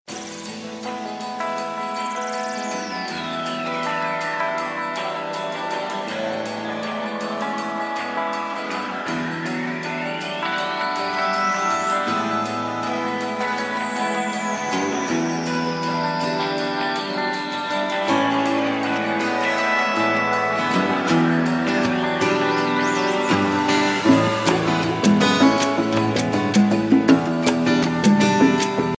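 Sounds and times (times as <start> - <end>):
guitar playing: 0.1 - 28.9.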